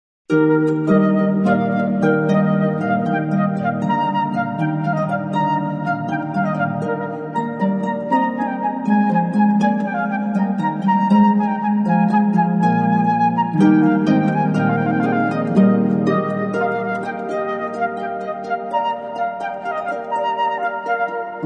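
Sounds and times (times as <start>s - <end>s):
flute: 0.3s - 21.4s
harp: 0.3s - 21.4s.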